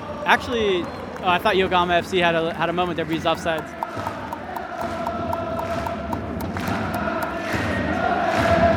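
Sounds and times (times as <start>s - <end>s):
speech: 0.3s - 4.2s
steady rhythmic clapping or drumbeats: 3.1s - 7.8s
large crowd of football supporters chanting in a Japanese stadium: 3.9s - 8.7s.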